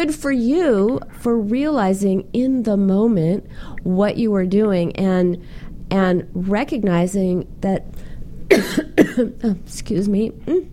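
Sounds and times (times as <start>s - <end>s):
speech: 0.0s - 10.7s
harsh coughing in a coughing attack: 8.5s - 9.3s.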